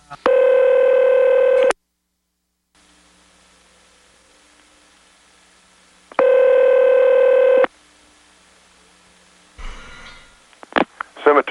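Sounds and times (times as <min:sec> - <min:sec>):
speech: 0:00.1 - 0:00.4
telephone dialing tones: 0:00.3 - 0:01.8, 0:06.2 - 0:07.7.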